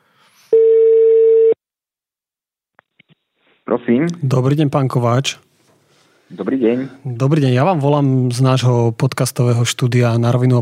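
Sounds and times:
steady telephone tone: 0:00.5 - 0:01.6
speech: 0:03.7 - 0:05.5, 0:06.3 - 0:10.6.

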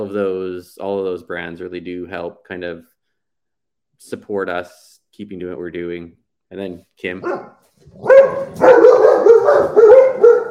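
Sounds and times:
speech: 0:00.0 - 0:03.0, 0:04.0 - 0:10.0
dogs barking: 0:07.2 - 0:10.4.

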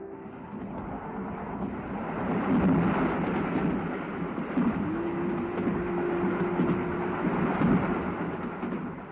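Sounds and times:
passenger train with compartments rumbling on rails while turning: 0:00.1 - 0:09.1
sustained whining tone: 0:04.6 - 0:08.5.

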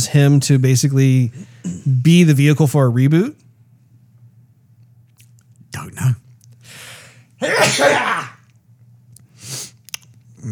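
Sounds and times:
speech: 0:00.0 - 0:03.4
low steady hum: 0:00.0 - 0:10.5
loud sneeze: 0:07.4 - 0:08.5
breathy sniffs: 0:09.3 - 0:09.8.

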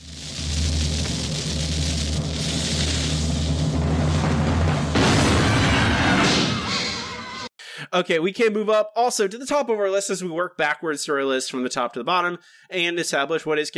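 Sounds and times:
low steady rumble: 0:00.0 - 0:06.0
cannon firing sound effect: 0:04.5 - 0:06.7
speech: 0:07.9 - 0:13.7.

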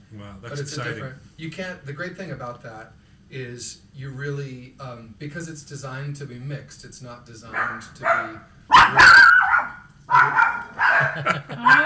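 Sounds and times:
speech: 0:00.1 - 0:09.3, 0:11.1 - 0:11.8
dog barking: 0:07.5 - 0:11.8
laughter: 0:10.8 - 0:11.8.

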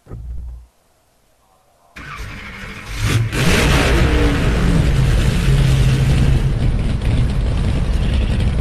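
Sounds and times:
race car engine starting and revving inside a pit garage: 0:02.0 - 0:08.5.

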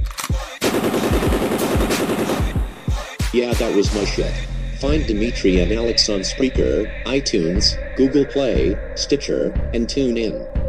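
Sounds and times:
machine gun fire sound effect: 0:00.2 - 0:03.8
speech: 0:03.3 - 0:10.6.

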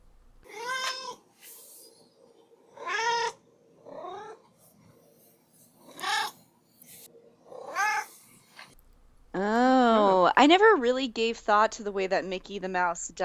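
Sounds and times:
cat meowing: 0:00.5 - 0:01.2, 0:02.7 - 0:04.4, 0:05.9 - 0:06.4, 0:07.6 - 0:08.1
speech: 0:10.4 - 0:13.2.

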